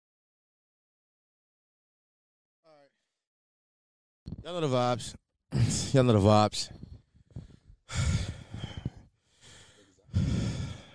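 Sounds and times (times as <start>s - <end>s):
speech: 4.4s - 6.8s
person panting heavily, out of breath: 7.2s - 10.9s.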